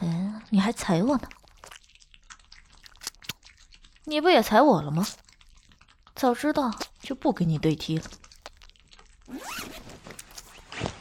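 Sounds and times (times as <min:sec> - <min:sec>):
speech: 0:00.5 - 0:01.4, 0:04.1 - 0:05.2, 0:06.2 - 0:08.2
boot zippers being unzipped: 0:09.3 - 0:10.9.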